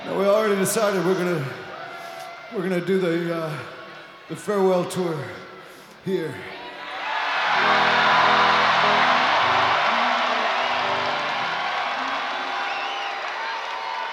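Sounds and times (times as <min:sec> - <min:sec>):
speech: 0:00.1 - 0:01.7, 0:02.5 - 0:06.6
live audience clapping and cheering: 0:07.0 - 0:14.1.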